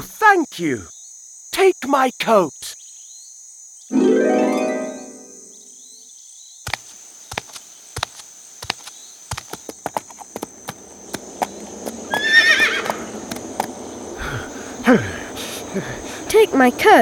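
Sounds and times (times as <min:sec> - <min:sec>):
speech: 0:00.0 - 0:01.0, 0:01.6 - 0:02.8, 0:03.9 - 0:04.6, 0:14.9 - 0:15.1, 0:16.6 - 0:17.0
faint insect-like hum: 0:00.0 - 0:17.0
horse hooves clip-clopping at walking pace: 0:06.7 - 0:13.8
horse neighing: 0:12.1 - 0:13.1.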